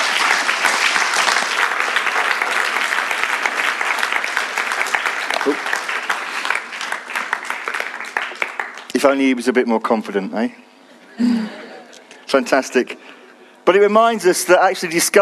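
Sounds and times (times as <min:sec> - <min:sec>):
audience applause: 0:00.0 - 0:09.2
speech: 0:09.0 - 0:11.3, 0:12.3 - 0:15.2.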